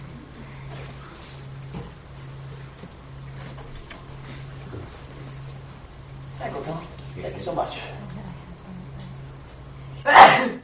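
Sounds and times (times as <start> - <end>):
faint hum: 0.0 - 10.6
speech: 6.7 - 8.0
person sneezing: 10.1 - 10.6.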